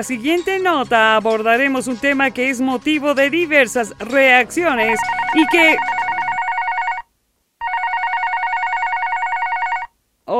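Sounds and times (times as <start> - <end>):
speech: 0.0 - 6.0
telephone ringing with a trilling electronic bell for an incoming call: 4.8 - 7.0, 7.6 - 9.9.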